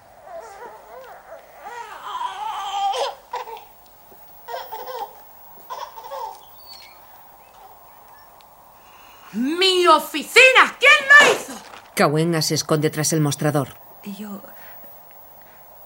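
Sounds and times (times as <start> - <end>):
frightened baby crying: 0.2 - 3.7, 4.5 - 6.5
speech: 9.4 - 14.6.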